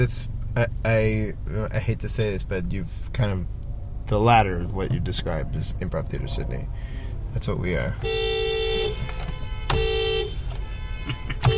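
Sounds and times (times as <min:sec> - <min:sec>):
speech: 0:00.0 - 0:08.4
steady traffic rumble: 0:00.0 - 0:11.5
several car horns blaring: 0:07.8 - 0:11.5.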